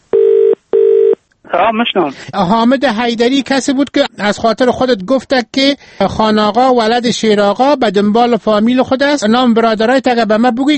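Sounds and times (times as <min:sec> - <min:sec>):
telephone ringing tones while calling a number abroad: 0:00.1 - 0:01.2
speech: 0:01.5 - 0:10.7.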